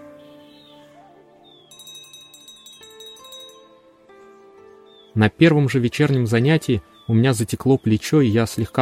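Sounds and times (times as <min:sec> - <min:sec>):
small hand bell rung to start a meditation session: 0:01.7 - 0:03.7
speech: 0:05.2 - 0:08.8.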